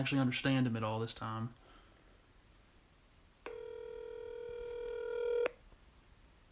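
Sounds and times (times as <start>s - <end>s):
speech: 0.0s - 1.6s
phone ringing tone over the line: 3.5s - 5.6s.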